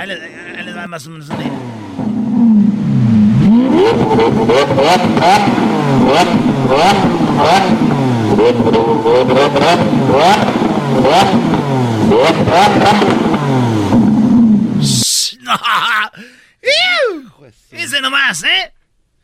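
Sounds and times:
speech: 0.0s - 2.8s, 3.6s - 14.0s
Lamborghini sports car engine revving: 1.3s - 15.0s
laughter: 15.2s - 17.3s.

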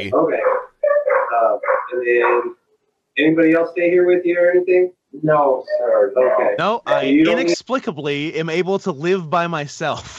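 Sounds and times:
speech: 0.0s - 0.7s, 1.3s - 2.6s, 3.2s - 10.1s
dog barking in whiny tonal yelps: 0.4s - 2.5s.

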